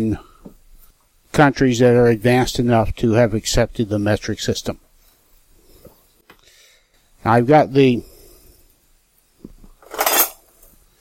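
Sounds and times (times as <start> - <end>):
speech: 0.0 - 0.3, 1.4 - 4.8, 7.2 - 8.1
utensils clinking in a kitchen drawer: 9.8 - 10.5.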